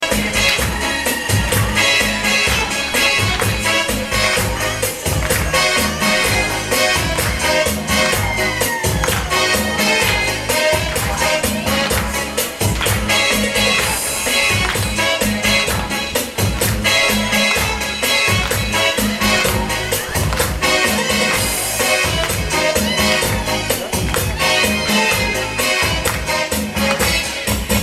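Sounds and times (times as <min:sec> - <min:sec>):
latin music ringtone: 0:00.0 - 0:27.8.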